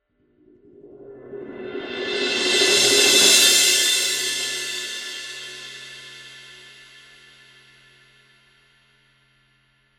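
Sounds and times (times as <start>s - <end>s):
fast crash cymbal roll on a 20-inch Paiste Signature cymbal: 1.6s - 8.2s.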